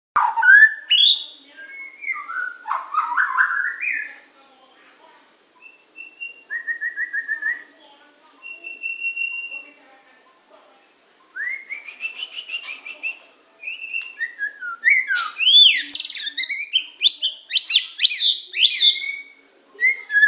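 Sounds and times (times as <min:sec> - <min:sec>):
Oriental magpie-robin whistling song: 0:00.2 - 0:04.1, 0:05.6 - 0:07.6, 0:08.4 - 0:09.7, 0:11.4 - 0:20.2.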